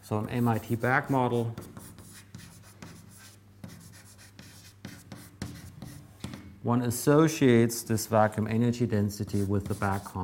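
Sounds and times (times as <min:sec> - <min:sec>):
speech: 0:00.1 - 0:01.7, 0:06.6 - 0:10.2
writing on a board during a physics lecture: 0:00.2 - 0:06.6, 0:09.3 - 0:10.2.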